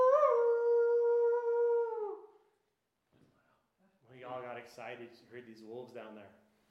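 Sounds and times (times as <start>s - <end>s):
person imitating a wolf howl: 0.0s - 2.2s.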